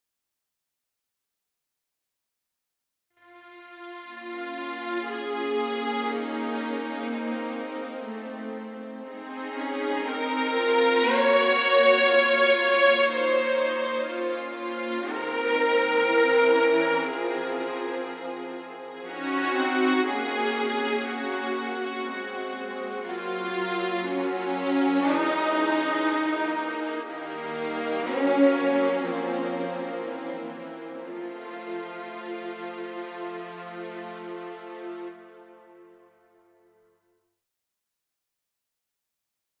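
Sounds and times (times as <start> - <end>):
orchestra in three parts with solo: 3.9 - 35.6.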